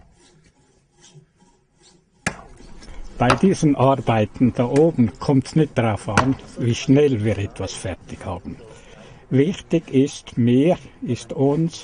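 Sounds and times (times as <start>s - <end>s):
hand saw rasping through wood: 0.0s - 4.2s
speech: 3.2s - 8.7s, 9.3s - 11.8s.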